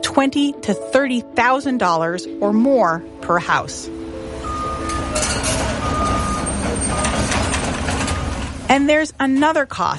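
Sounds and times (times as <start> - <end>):
speech: 0.0 - 4.0, 8.7 - 9.9
heavy truck engine rumbling: 3.9 - 9.6
roadwork and traffic noise: 4.0 - 9.6
high reversing beep in long tones: 4.4 - 8.5.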